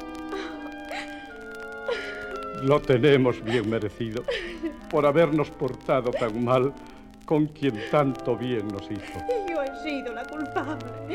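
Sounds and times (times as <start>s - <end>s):
person sobbing with breathy gasping cries: 0.3s - 2.6s, 3.3s - 5.0s, 6.0s - 6.7s, 8.9s - 9.5s, 10.6s - 11.1s
speech: 2.6s - 11.1s.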